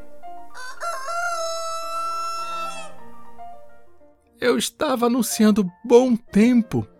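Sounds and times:
rooster crowing: 0.5s - 3.3s
speech: 4.4s - 6.9s.

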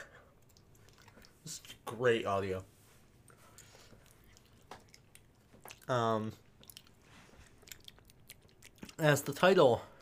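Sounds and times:
quiet ASMR chewing: 0.1s - 1.8s, 3.2s - 9.4s
speech: 1.9s - 2.7s, 5.9s - 6.4s, 9.0s - 9.9s.

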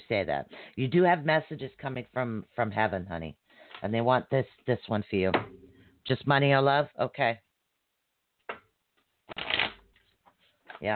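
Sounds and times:
speech: 0.1s - 7.4s
tarot cards being shuffled: 9.3s - 10.9s.

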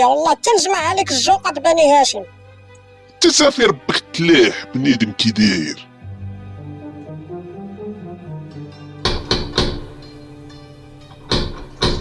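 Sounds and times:
speech: 0.0s - 2.4s, 3.2s - 5.9s
sharp knocks on a door: 9.0s - 10.2s, 11.1s - 12.0s.

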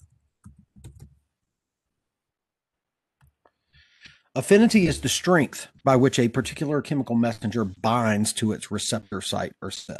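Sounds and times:
faint typing on a computer keyboard: 0.0s - 1.2s
speech: 4.4s - 9.9s.

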